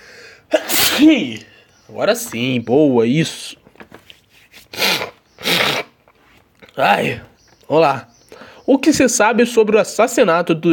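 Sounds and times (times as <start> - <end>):
person sneezing: 0.5 - 1.4, 4.7 - 6.0
speech: 1.0 - 3.6, 6.8 - 8.1, 8.7 - 10.7.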